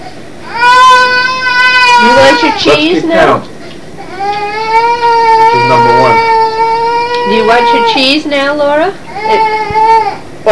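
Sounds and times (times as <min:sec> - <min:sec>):
young child crying in a temper tantrum: 0:00.5 - 0:02.8, 0:04.0 - 0:08.0, 0:09.1 - 0:10.4
speech: 0:02.0 - 0:03.5, 0:07.3 - 0:09.5.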